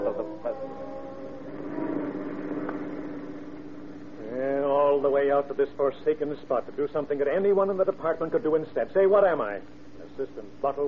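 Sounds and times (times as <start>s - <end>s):
car engine humming as the vehicle travels along: 0.0s - 5.2s
speech: 5.1s - 10.8s.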